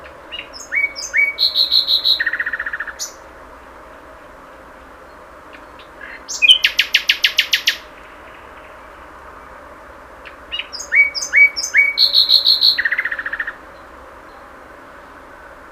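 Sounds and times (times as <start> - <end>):
Common nightingale Luscinia megarhynchos singing: 0.0 - 3.3, 5.0 - 15.6.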